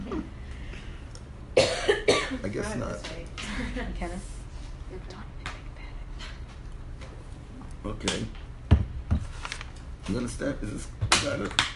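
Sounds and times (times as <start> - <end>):
person coughing sharply: 1.6 - 2.4
speech: 2.4 - 5.4, 7.8 - 8.4, 10.1 - 11.7.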